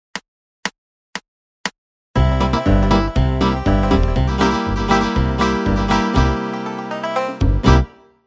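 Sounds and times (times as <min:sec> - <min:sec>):
main backing track music: 0:02.2 - 0:08.2.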